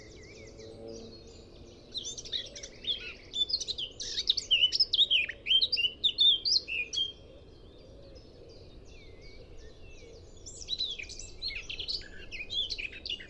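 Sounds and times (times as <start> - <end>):
Eurasian blackcap warbling song: 1.3 - 7.2, 10.4 - 13.2.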